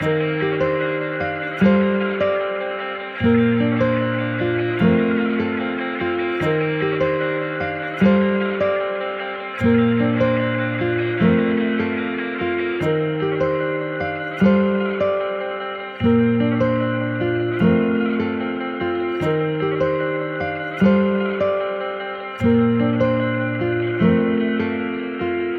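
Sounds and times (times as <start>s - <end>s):
guitar in G minor: 0.0s - 25.5s.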